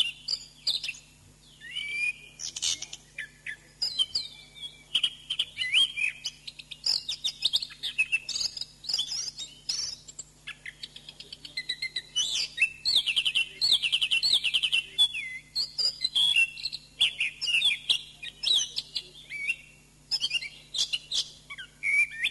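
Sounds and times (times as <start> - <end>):
Oriental magpie-robin singing: 0.0 - 22.2
faint steady hum: 0.0 - 22.2.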